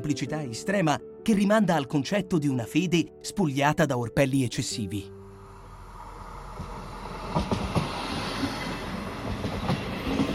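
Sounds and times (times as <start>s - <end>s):
speech: 0.0s - 5.2s
train rumbling on rails: 5.6s - 10.3s
train wheels clacking over track joints: 6.6s - 10.3s.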